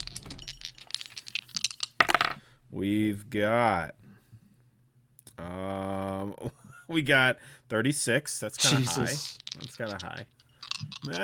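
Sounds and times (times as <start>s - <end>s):
dice clattering and tumbling: 0.0s - 2.4s, 9.0s - 11.2s
speech: 2.7s - 4.0s, 5.4s - 11.2s.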